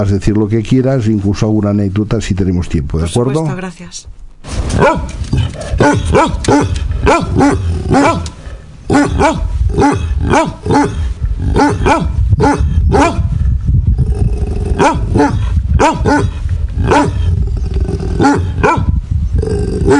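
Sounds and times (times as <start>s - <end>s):
speech: 0.0s - 13.2s, 14.8s - 17.2s, 18.2s - 18.9s, 19.5s - 19.9s
several dogs barking: 4.8s - 13.3s, 14.8s - 17.3s, 18.2s - 19.0s
dog growling: 5.3s - 13.2s, 14.0s - 19.9s.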